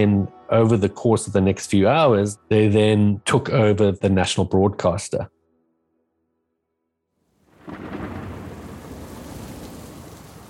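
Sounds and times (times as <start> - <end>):
speech: 0.0 - 5.4
dense wash of falling rain at night in Harare Zimbabwe: 7.4 - 10.4
low thunder rumble during a night storm in Harare Zimbabwe: 7.5 - 10.4.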